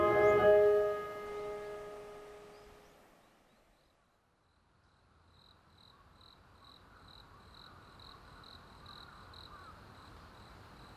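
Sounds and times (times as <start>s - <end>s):
ringing bell-like tone: 0.0s - 2.2s.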